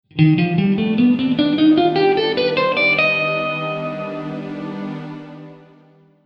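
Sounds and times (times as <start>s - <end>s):
E-flat Lydian augmented scale: 0.2s - 6.2s.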